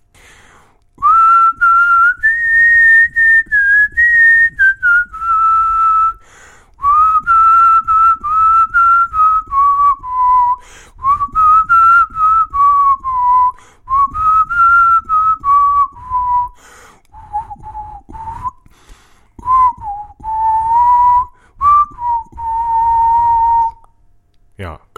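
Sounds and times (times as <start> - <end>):
short breaths: 0.0 - 0.9, 6.2 - 6.8, 10.6 - 11.1, 13.5 - 13.9, 16.5 - 19.5, 21.3 - 21.6
person whistling a song melody: 1.0 - 18.8, 19.4 - 23.9.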